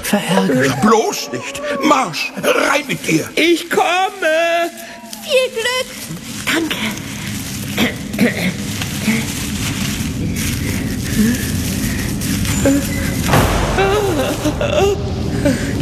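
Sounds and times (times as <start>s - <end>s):
murmuring voices: 0.0s - 15.7s
speech: 0.1s - 6.9s, 12.6s - 15.7s
rumbling noise: 5.9s - 15.7s
heavy door banging: 13.3s - 15.7s.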